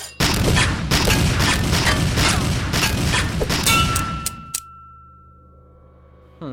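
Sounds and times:
gunshots in a dark tunnel: 0.2s - 4.2s.

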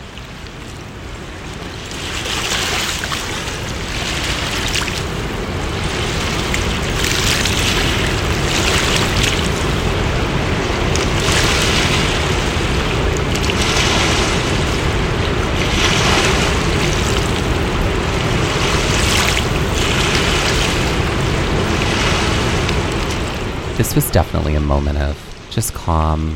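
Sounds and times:
wind buffeting the microphone: 0.0s - 25.6s
steady rushing river water by a boardwalk: 0.0s - 26.3s
speech: 24.0s - 26.3s.

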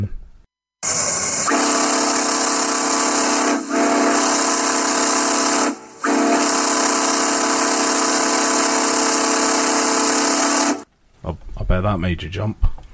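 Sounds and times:
steam locomotive whistle: 0.8s - 10.8s
speech: 11.8s - 12.7s.

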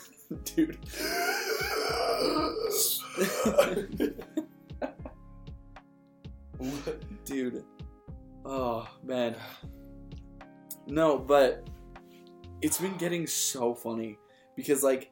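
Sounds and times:
speech: 0.3s - 1.2s, 1.9s - 4.5s, 6.6s - 7.7s, 8.4s - 9.7s, 10.9s - 11.7s, 12.6s - 15.1s
harsh hacking coughing fit: 1.0s - 4.3s, 6.6s - 7.2s.

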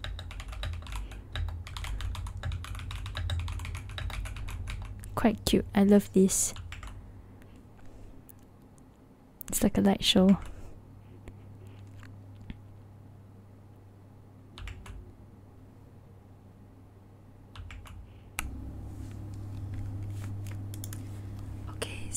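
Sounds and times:
computer keyboard typing: 0.0s - 5.1s, 5.9s - 7.0s, 14.6s - 15.0s, 17.5s - 18.6s, 19.3s - 21.4s
speech: 5.2s - 6.6s, 9.6s - 10.5s
steady low hum: 18.4s - 22.1s.

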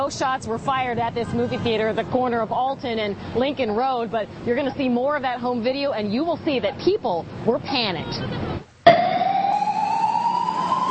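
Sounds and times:
speech: 0.0s - 8.7s
police car siren: 8.9s - 10.8s.

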